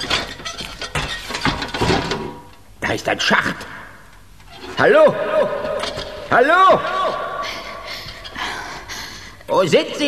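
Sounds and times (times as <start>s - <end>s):
door being pushed open by someone lying on their belly: 0.0s - 2.5s, 4.4s - 4.9s
speech: 2.9s - 3.7s, 4.8s - 7.2s, 9.5s - 10.0s.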